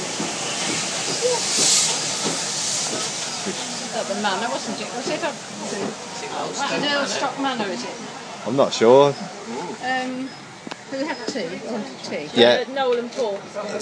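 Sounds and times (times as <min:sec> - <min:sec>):
steady loud hissing rush: 0:00.0 - 0:10.2
people's voices chattering: 0:00.0 - 0:13.7
speech: 0:04.2 - 0:13.7.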